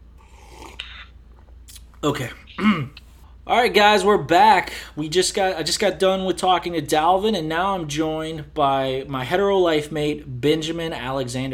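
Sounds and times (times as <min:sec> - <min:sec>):
slurping sip of tea: 0:00.0 - 0:03.2
speech: 0:02.0 - 0:11.5.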